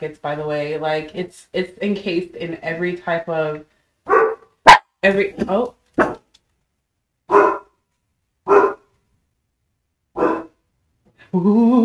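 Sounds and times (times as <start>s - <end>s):
speech: 0.0s - 3.8s, 5.0s - 6.1s, 11.3s - 11.8s
dog barking sharply: 4.1s - 4.9s, 6.0s - 6.2s, 7.3s - 7.8s, 8.4s - 8.9s, 10.2s - 10.6s.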